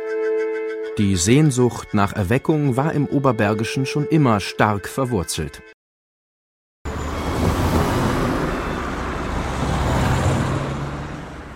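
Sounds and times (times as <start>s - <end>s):
speech: 1.0s - 5.7s
heavy road traffic of cars and heavier vehicles on a federal highway: 6.9s - 11.5s.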